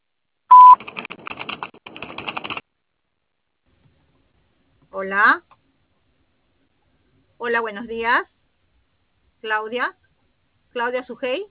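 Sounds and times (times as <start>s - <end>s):
answering machine beep before a message: 0.5s - 0.8s
speech: 5.0s - 5.5s, 7.4s - 8.3s, 9.4s - 10.0s, 10.8s - 11.4s.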